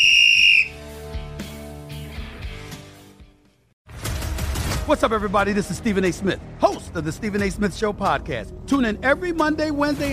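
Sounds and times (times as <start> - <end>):
loud shrill whistle blast: 0.0 - 0.8
speech: 4.9 - 10.1.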